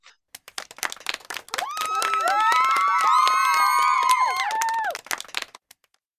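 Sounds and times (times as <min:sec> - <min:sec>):
crowd clapping: 0:00.4 - 0:06.1
voices whooping and cheering: 0:01.5 - 0:05.0.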